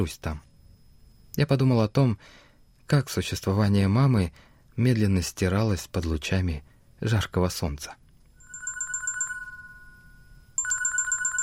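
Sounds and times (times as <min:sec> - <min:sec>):
speech: 0:00.0 - 0:00.5, 0:01.4 - 0:08.0
telephone ringing with rapid electronic trilling: 0:08.4 - 0:11.4.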